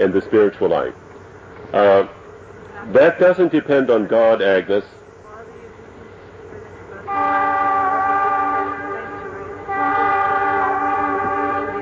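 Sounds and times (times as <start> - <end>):
speech: 0.0 - 1.0, 1.7 - 2.2, 2.8 - 5.0
low rumble of moving little park train: 0.0 - 11.8
little park train whistle blasts: 7.0 - 11.8.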